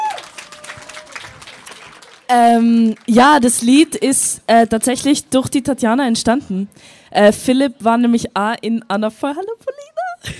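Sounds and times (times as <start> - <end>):
small crowd applauding: 0.0 - 3.6
speech: 2.3 - 10.3.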